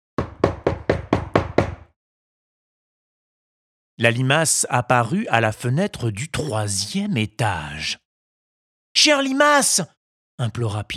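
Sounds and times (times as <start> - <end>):
hard knocking on a wooden door: 0.2 - 2.0
speech: 4.0 - 8.0, 9.0 - 10.9.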